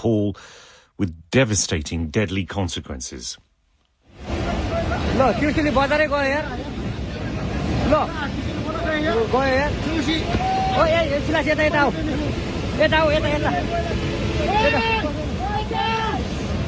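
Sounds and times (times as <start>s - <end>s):
speech: 0.0s - 3.5s, 5.0s - 6.8s, 7.9s - 14.9s
rushing floodwater: 4.1s - 16.6s
crowd shouting and crying out in alarm: 9.7s - 16.6s.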